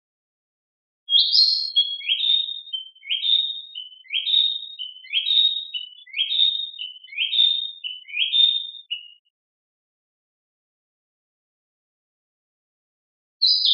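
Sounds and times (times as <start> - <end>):
Narcissus flycatcher song: 1.1 - 9.3, 13.4 - 13.7.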